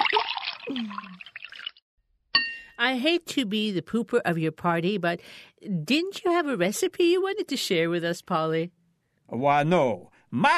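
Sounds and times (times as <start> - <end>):
liquor being poured over shrimp: 0.0 - 1.8
speech: 2.8 - 10.5.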